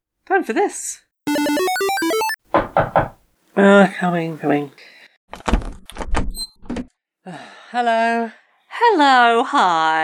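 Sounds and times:
speech: 0:00.4 - 0:01.6, 0:02.8 - 0:04.9, 0:07.3 - 0:10.0
front door clunks: 0:02.5 - 0:03.2
front door opening: 0:02.6 - 0:03.2.

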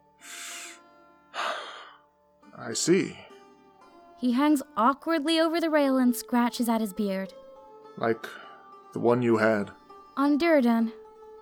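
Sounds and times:
man inhaling: 0:00.2 - 0:00.8, 0:01.4 - 0:02.0, 0:08.2 - 0:08.6
speech: 0:02.6 - 0:03.3, 0:04.2 - 0:07.4, 0:08.0 - 0:11.0.

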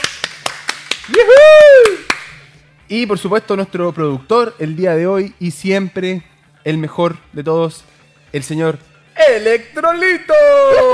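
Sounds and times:
single person clapping: 0:00.0 - 0:02.5
speech: 0:01.1 - 0:01.5, 0:02.9 - 0:10.9
voice letting out a long rising-and-falling cheer: 0:01.1 - 0:02.2, 0:10.1 - 0:10.9.

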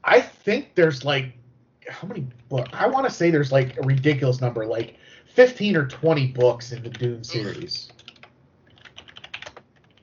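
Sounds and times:
speech: 0:00.1 - 0:08.0
typing on a mechanical keyboard: 0:06.3 - 0:07.2, 0:07.8 - 0:10.0.

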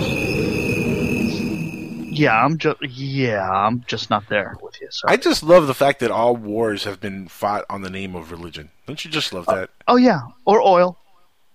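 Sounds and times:
crickets chirping in a high-pitched trill: 0:00.0 - 0:09.7
speech: 0:02.2 - 0:11.0.

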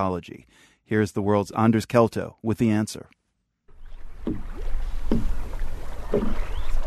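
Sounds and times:
speech: 0:00.0 - 0:03.2, 0:05.1 - 0:05.4, 0:06.1 - 0:06.5
steady wind: 0:00.0 - 0:06.8
water sloshing and splashing around a small boat on Lake Naivasha: 0:03.7 - 0:06.8.

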